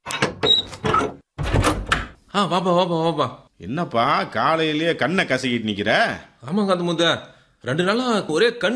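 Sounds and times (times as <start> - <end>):
door opening with rattling scrapes and creaks: 0.0 - 2.2
speech: 2.3 - 8.7.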